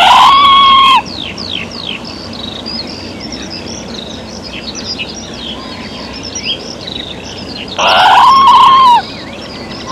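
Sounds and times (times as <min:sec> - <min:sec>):
red squirrel drawn-out cry: 0:00.0 - 0:01.0, 0:07.8 - 0:09.1
songbirds chirping: 0:00.0 - 0:09.9.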